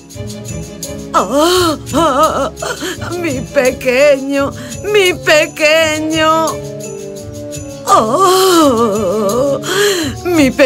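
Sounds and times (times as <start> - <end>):
speech: 0.1 - 6.7, 7.9 - 10.6
women crying and wailing: 1.2 - 3.5, 7.9 - 10.5.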